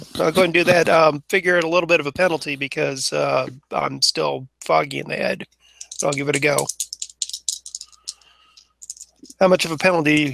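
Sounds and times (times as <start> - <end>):
speech: 0.2 - 6.8, 9.4 - 10.3
plastic dice rattling and clattering: 5.8 - 9.4.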